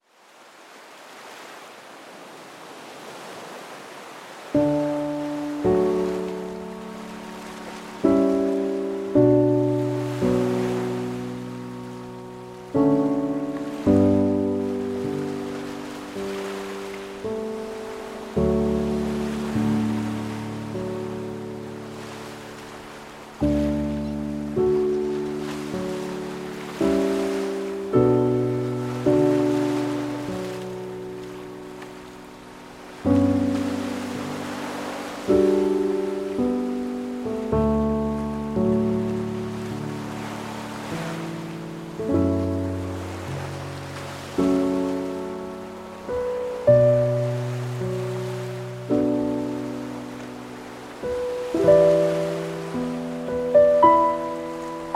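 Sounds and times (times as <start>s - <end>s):
ocean waves: 0.0s - 54.9s
morning piano music: 4.6s - 54.9s.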